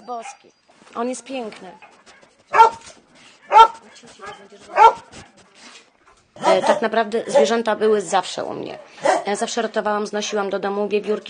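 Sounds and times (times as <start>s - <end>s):
speech: 0.1s - 1.9s, 2.5s - 5.3s, 6.4s - 11.2s
young dog barking: 0.2s - 0.5s, 2.5s - 5.2s, 6.4s - 7.6s, 8.7s - 9.4s.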